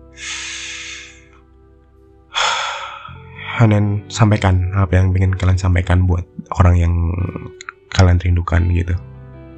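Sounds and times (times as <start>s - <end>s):
deep breath in and out: 0.0s - 1.4s, 2.3s - 3.6s
speech: 3.6s - 9.1s.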